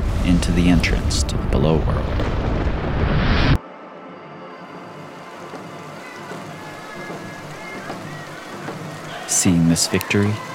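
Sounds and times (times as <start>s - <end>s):
rain falling: 0.0s - 2.2s, 5.0s - 10.5s
loud dense rumbling burst: 0.0s - 3.6s
speech: 0.5s - 2.4s, 9.4s - 10.5s.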